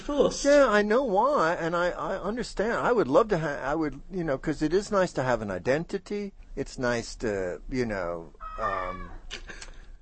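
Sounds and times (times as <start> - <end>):
speech: 0.1 - 9.6
cat meowing: 8.4 - 9.3.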